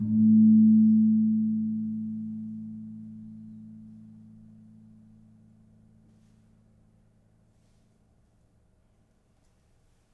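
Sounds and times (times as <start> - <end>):
kempul gong of a gamelan: 0.0 - 4.7.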